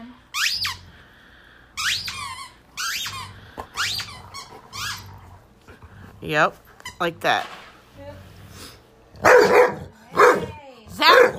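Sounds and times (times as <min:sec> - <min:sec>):
speech: 0:06.2 - 0:07.6
dog barking: 0:09.2 - 0:11.3.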